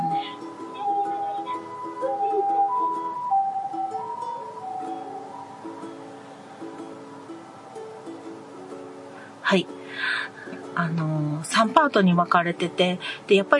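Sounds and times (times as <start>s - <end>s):
ambulance siren passing by: 0.0s - 8.5s
speech: 9.5s - 13.5s.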